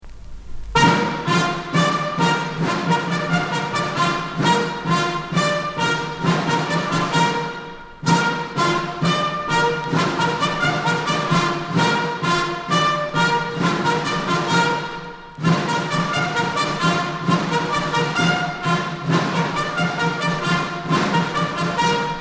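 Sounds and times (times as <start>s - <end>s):
drums: 0.0s - 22.1s
regulation military march: 0.0s - 22.1s
bugles: 0.7s - 22.1s.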